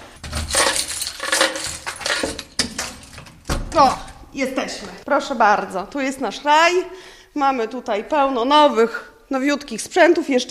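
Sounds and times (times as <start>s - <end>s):
bunch of keys jingling while searching for the right key to open a door: 0.0s - 4.1s
speech: 3.8s - 10.4s.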